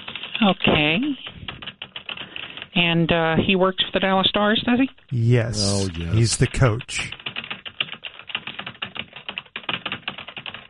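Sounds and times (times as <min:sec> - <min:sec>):
typing on a computer keyboard: 0:00.0 - 0:00.4, 0:01.5 - 0:02.8, 0:07.2 - 0:10.6
speech: 0:00.4 - 0:01.4, 0:02.8 - 0:07.2.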